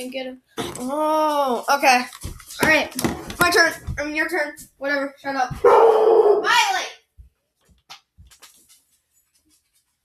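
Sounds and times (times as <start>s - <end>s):
speech: 0.0s - 6.9s
dog barking: 5.6s - 6.5s.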